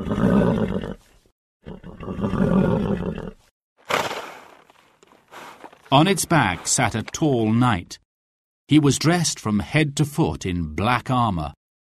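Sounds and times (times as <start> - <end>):
enormous black horse snorting through the nostrils: 1.6 - 5.9
enormous black horse letting out loud rough blasts: 3.8 - 6.7
speech: 5.9 - 8.0, 8.7 - 11.6.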